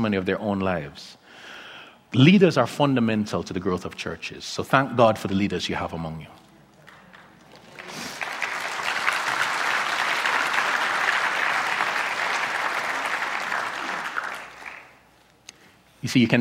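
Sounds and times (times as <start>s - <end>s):
speech: 0.0s - 1.5s, 2.1s - 6.4s, 16.0s - 16.4s
audience clapping in a room full of people: 6.8s - 15.2s.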